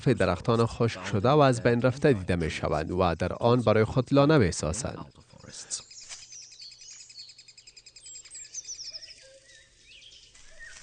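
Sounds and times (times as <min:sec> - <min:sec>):
speech: 0:00.0 - 0:05.8
blue tits calling in high chirps and trills: 0:04.9 - 0:10.8.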